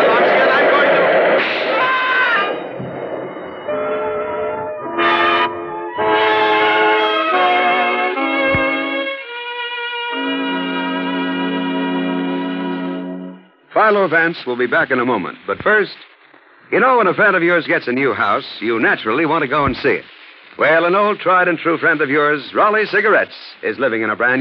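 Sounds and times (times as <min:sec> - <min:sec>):
elevated train rumbling past: 0:00.0 - 0:08.2
shrill metallic squeals from an elevated train: 0:01.8 - 0:07.3
horn-like tones shifting in pitch: 0:03.6 - 0:14.0
speech: 0:13.9 - 0:16.1, 0:16.7 - 0:24.3.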